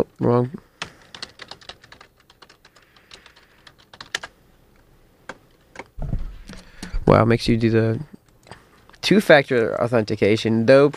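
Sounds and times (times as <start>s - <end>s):
speech: 0.0s - 0.6s, 7.1s - 8.1s, 9.1s - 10.9s
typing on a computer keyboard while logging into an account: 0.8s - 4.3s
louder low thump: 6.0s - 7.6s.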